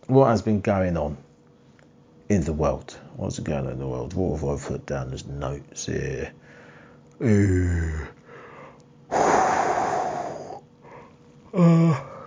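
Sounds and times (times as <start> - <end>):
speech: 0.1 - 1.2, 2.3 - 6.6, 7.2 - 8.2
big drawn-out yawn: 7.2 - 8.2, 9.1 - 12.2.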